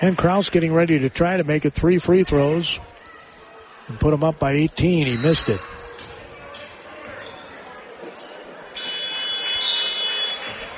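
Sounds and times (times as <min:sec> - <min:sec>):
speech: 0:00.0 - 0:03.0, 0:03.9 - 0:06.1
busy crowd murmur in a large arena: 0:00.0 - 0:10.7
basketball arena electronic buzzer blaring: 0:08.8 - 0:10.6.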